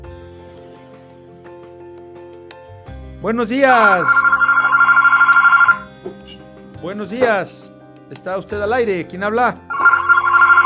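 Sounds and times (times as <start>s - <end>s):
speech: 3.2s - 4.4s, 6.8s - 9.6s
telephone ringing with incoming call: 3.7s - 5.9s, 9.7s - 10.6s.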